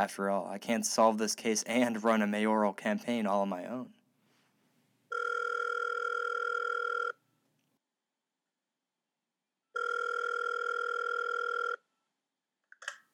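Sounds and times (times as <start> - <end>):
speech: 0.0 - 4.0
landline phone ringing tones: 5.1 - 7.2, 9.8 - 11.8.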